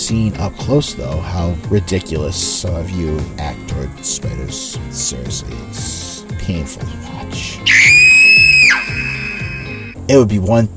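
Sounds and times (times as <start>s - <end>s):
speech: 0.1s - 8.0s, 10.1s - 10.7s
high-pitched scream of fright trailing into a wail: 7.6s - 10.0s.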